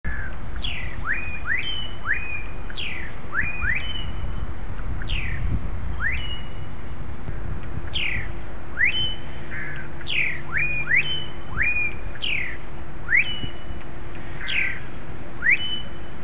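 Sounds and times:
melodious blackbird singing: 0.0s - 6.9s, 7.8s - 16.2s.

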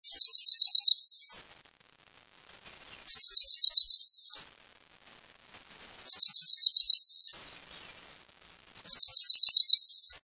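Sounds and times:
Cerulean Warbler singing: 0.0s - 1.4s, 2.7s - 4.4s, 5.6s - 8.1s, 8.7s - 10.2s.

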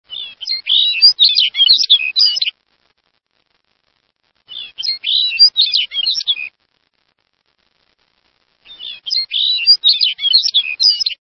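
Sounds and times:
Lapland Longspur songs: 0.1s - 2.6s, 4.5s - 6.5s, 8.7s - 11.2s.

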